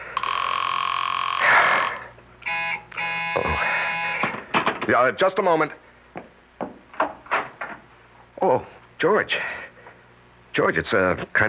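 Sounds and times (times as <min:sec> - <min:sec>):
telephone ringing unanswered: 0:00.2 - 0:04.4
speech: 0:04.9 - 0:05.9, 0:08.5 - 0:09.6, 0:10.6 - 0:11.4.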